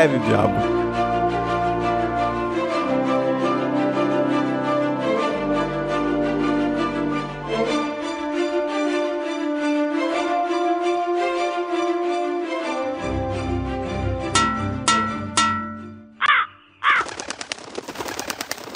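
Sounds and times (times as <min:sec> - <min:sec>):
speech: 0:00.0 - 0:00.8
sustained tonal music: 0:00.0 - 0:16.3
sharp percussive hits: 0:14.3 - 0:16.0
crow cawing harshly: 0:16.2 - 0:17.2.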